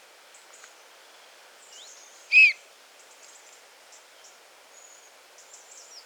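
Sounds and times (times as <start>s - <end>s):
Eurasian bullfinch Pyrrhula pyrrhula giving soft piping calls: 2.3s - 2.6s.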